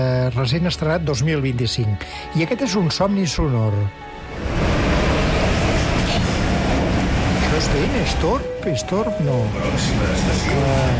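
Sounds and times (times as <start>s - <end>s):
speech: 0.0s - 4.6s, 7.6s - 10.9s
metro train in motion rumbling and rattling heard from inside the carriage: 4.0s - 10.9s.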